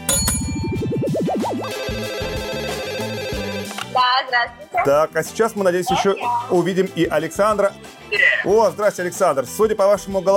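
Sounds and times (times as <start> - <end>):
electronic phone ringtone with warbling sweep and synth melody: 0.0 - 3.7
speech: 4.2 - 10.3.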